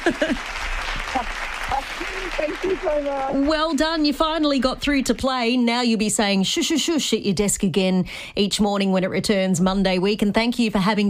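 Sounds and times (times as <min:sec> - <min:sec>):
speech: 0:00.0 - 0:01.4, 0:02.4 - 0:11.0
people cheering inside a doctor's surgery: 0:00.0 - 0:03.8
applause inside a doctor's surgery: 0:00.0 - 0:04.2.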